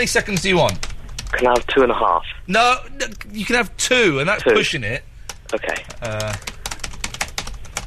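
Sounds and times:
typing on a computer keyboard: 0.0s - 1.7s, 5.2s - 7.8s
speech: 0.0s - 6.5s.

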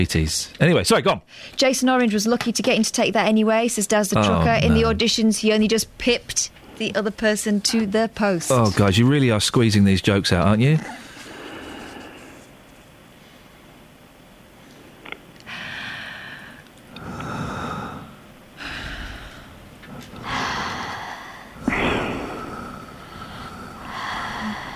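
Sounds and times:
speech: 0.0s - 11.1s
heavy rasping breathing: 10.8s - 12.6s, 15.5s - 24.7s.

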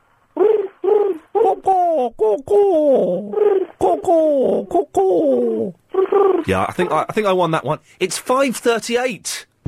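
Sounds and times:
human voice imitating a pigeon cooing: 0.4s - 7.1s
speech: 2.4s - 3.2s, 6.5s - 9.5s.

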